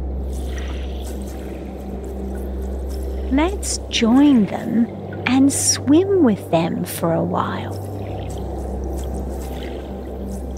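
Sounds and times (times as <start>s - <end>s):
ocean water swishing and rushing with a deep low rumble: 0.1s - 10.5s
speech: 3.3s - 7.9s.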